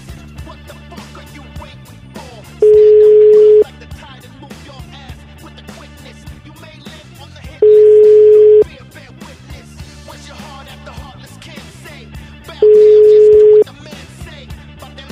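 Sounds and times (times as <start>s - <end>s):
telephone ring tone on a call line: 2.6s - 3.6s, 7.6s - 8.6s, 12.6s - 13.6s.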